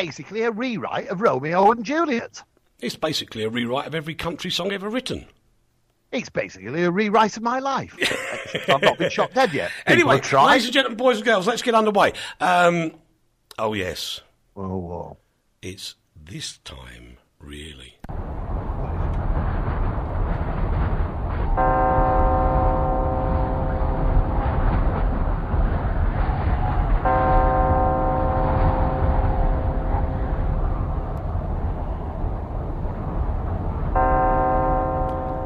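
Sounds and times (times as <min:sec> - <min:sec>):
speech: 0:00.0 - 0:05.4, 0:06.1 - 0:13.0, 0:13.6 - 0:18.3
laughter: 0:08.0 - 0:10.3
steady rumble: 0:18.1 - 0:35.4
deep bell tolling: 0:21.5 - 0:25.7, 0:27.0 - 0:31.1, 0:34.0 - 0:35.4.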